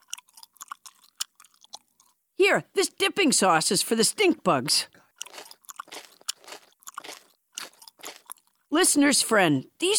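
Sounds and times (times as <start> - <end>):
chewing a bite of warm mealworms: 0.0 - 2.2, 5.1 - 8.7
speech: 2.4 - 5.0, 8.8 - 9.9.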